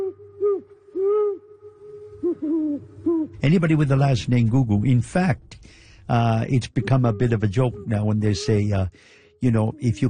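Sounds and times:
owl hooting: 0.0 - 3.6, 6.5 - 10.0
soft steady hum: 0.0 - 10.0
speech: 2.8 - 10.0.

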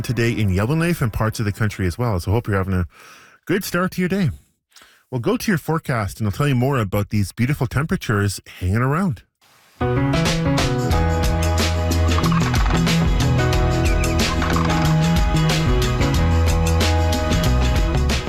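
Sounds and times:
loud steady music track: 0.0 - 2.0, 9.8 - 18.2
speech: 0.0 - 4.4, 5.1 - 10.2
seagulls calling: 11.7 - 15.6.

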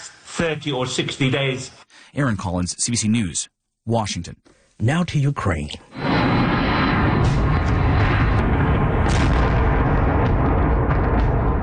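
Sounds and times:
speech: 0.4 - 6.0
drones flying through the sky over Kyiv during an attack: 5.9 - 11.6.

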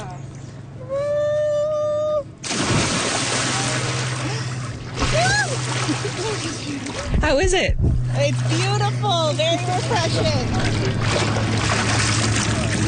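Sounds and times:
low hum: 0.0 - 12.8
river water splashing from someone swimming: 2.4 - 7.2, 9.4 - 12.8
speech: 7.3 - 11.9.

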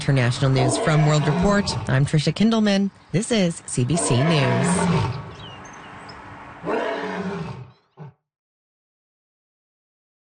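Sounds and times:
speech: 0.0 - 5.2
lion roaring: 0.4 - 2.0, 3.9 - 5.4, 6.6 - 8.2.

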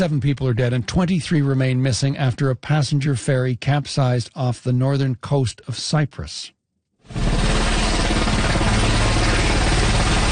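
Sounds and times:
speech: 0.0 - 7.2
military helicopter rotor thumping: 7.1 - 10.3.

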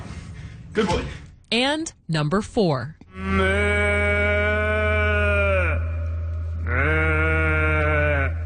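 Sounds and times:
speech: 0.8 - 3.5
person imitating a cow mooing: 3.1 - 8.4.

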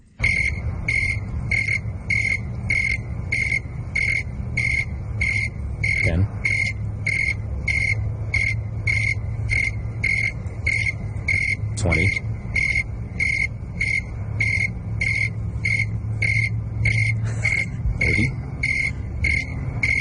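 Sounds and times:
low hum: 0.0 - 19.9
cricket chirping: 0.2 - 19.9.

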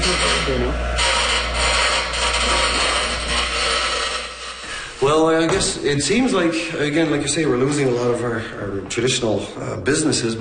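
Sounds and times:
speech: 0.5 - 1.0, 5.0 - 10.3
file tapering a wooden piece: 1.0 - 4.7.

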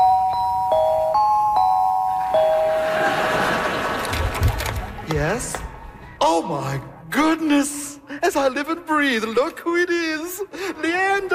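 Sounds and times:
doorbell chiming: 0.0 - 4.0
laughter: 2.2 - 6.2
speech: 5.2 - 5.6, 6.2 - 11.3.

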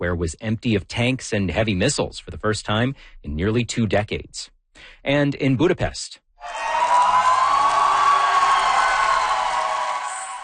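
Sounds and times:
speech: 0.0 - 6.7
large crowd cheering with whoops and shouts: 6.4 - 10.4.

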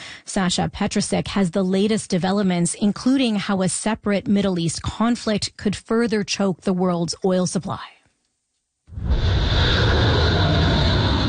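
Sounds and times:
speech: 0.4 - 8.0
military jet engine roar taking off from aircraft carrier: 9.0 - 11.2.

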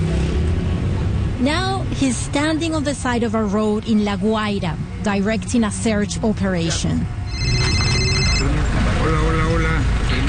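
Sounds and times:
rumble of outdoor traffic: 0.0 - 10.2
speech: 1.4 - 7.2
mobile phone ringing with an electronic tone: 7.3 - 8.6.

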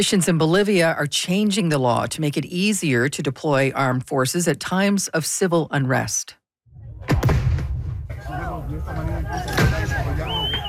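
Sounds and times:
speech: 0.0 - 6.4, 8.2 - 10.4
loud bangs from tear gas fired by police and firecrackers lit by protesters: 7.0 - 8.4
noisy crowd at a street protest in Bolivia: 8.1 - 10.6
shouting voices at a street protest: 8.2 - 10.6.

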